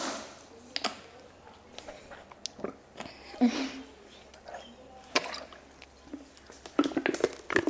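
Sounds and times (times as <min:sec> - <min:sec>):
person drinking from a plastic bottle: 0:01.8 - 0:07.6.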